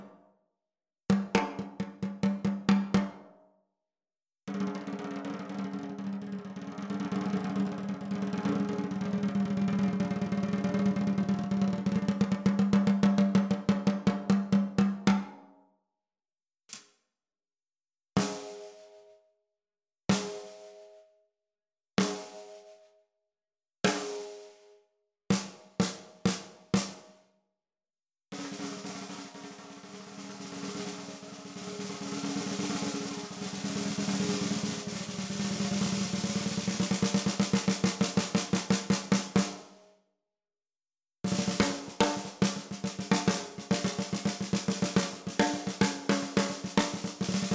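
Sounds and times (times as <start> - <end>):
Odery imbuia 13x7 snare drum: 1.1 - 3.3, 4.5 - 15.4, 18.2 - 19.0, 20.1 - 20.9, 22.0 - 22.7, 23.9 - 24.6, 25.3 - 27.2, 28.4 - 39.8, 41.3 - 47.5.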